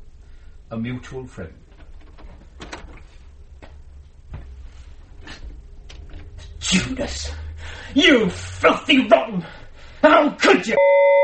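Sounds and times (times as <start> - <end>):
low steady rumble: 0.0 - 10.2
speech: 0.7 - 1.7, 6.7 - 11.2
door being opened: 1.6 - 4.5.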